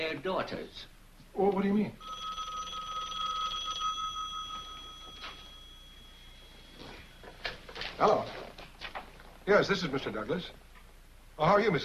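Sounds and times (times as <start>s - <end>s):
faint hiss: 0.0s - 11.8s
speech: 0.1s - 2.2s, 8.0s - 8.4s, 9.5s - 10.6s, 11.4s - 11.8s
telephone bell ringing: 2.0s - 7.4s.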